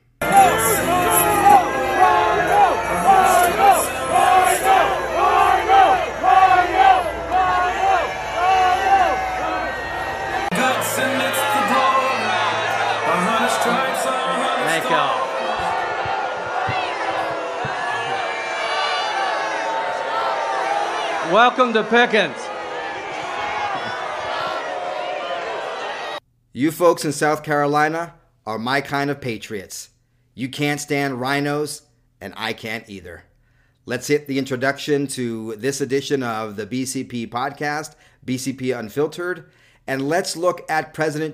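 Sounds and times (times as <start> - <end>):
large crowd booing and shouting at a rally: 0.2 - 26.2
speech: 21.5 - 22.4, 26.6 - 41.3.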